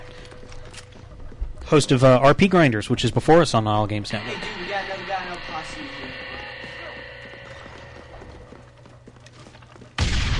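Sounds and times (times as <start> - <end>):
steady humming tones: 0.0 - 10.3
speech: 1.7 - 6.3
video game grenade explosion: 10.0 - 10.3.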